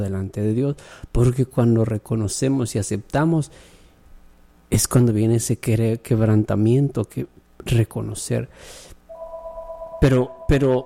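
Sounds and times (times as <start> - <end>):
speech: 0.0 - 3.8, 4.7 - 8.9, 10.0 - 10.8
telephone ringing with an incoming call: 9.1 - 10.8.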